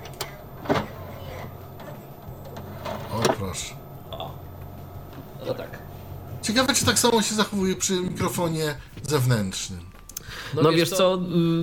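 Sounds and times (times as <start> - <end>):
computer CD drive tray opening with click, motorized whir and clunk: 0.0 - 3.6
speech: 3.4 - 3.8, 6.4 - 11.6.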